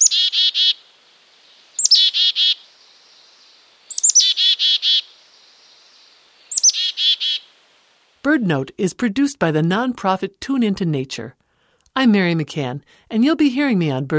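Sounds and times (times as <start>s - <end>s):
Black-capped Chickadee chick-a-dee call: 1.8s - 2.6s, 3.9s - 5.1s, 6.5s - 7.4s
speech: 8.2s - 11.4s, 12.0s - 14.1s.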